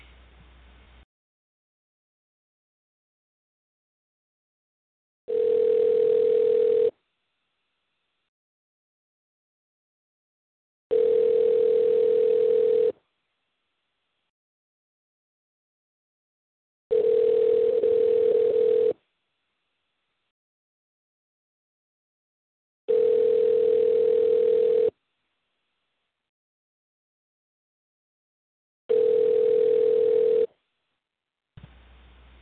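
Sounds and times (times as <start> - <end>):
telephone ringback tone while calling: 5.3 - 6.9, 10.9 - 13.0, 16.9 - 19.0, 22.9 - 24.9, 28.9 - 30.5.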